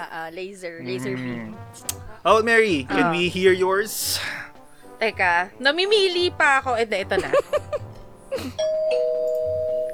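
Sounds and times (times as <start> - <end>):
speech: 0.0 - 7.8
laughter: 7.1 - 8.5
doorbell ding-dong chime: 8.6 - 9.9.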